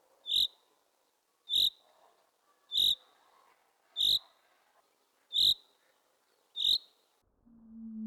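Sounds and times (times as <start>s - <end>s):
common chaffinch rain call chirps: 0.2s - 0.7s, 1.5s - 1.8s, 2.7s - 3.1s, 4.0s - 4.3s, 5.3s - 5.8s, 6.5s - 7.0s.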